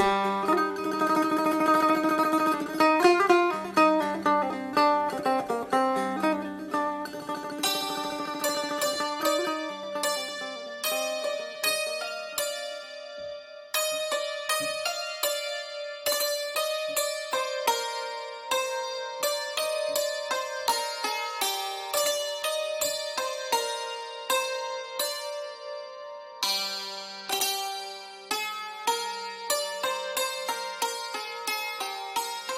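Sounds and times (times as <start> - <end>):
tar and tanbur long-necked lutes playing a lively melody: 0.0 - 32.5.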